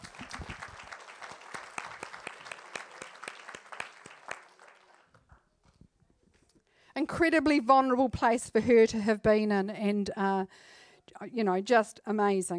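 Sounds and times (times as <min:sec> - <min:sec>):
crowd applauding as praise: 0:00.0 - 0:05.2
speech: 0:07.0 - 0:12.5.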